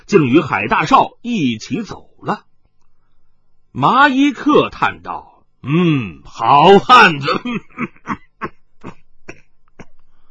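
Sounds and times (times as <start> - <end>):
speech: 0.1 - 2.5, 3.7 - 9.0
person coughing harshly: 7.2 - 10.0.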